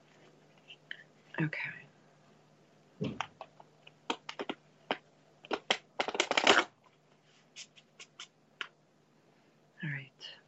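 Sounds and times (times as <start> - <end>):
faint steady low hum: 0.0 - 10.4
speech: 1.4 - 1.8
oracle cards being shuffled and pulled from a deck: 3.0 - 6.7, 7.4 - 8.7.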